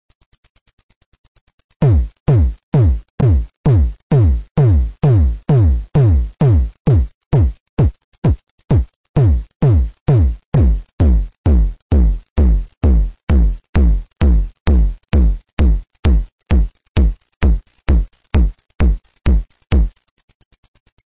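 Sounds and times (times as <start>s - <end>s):
Synsonic electronic tom drum: 1.8s - 20.0s.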